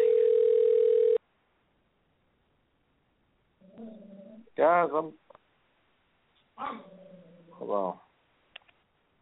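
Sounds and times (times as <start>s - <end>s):
telephone dial tone after dialing a wrong number: 0.0s - 1.2s
speech: 4.6s - 5.2s, 7.6s - 8.0s.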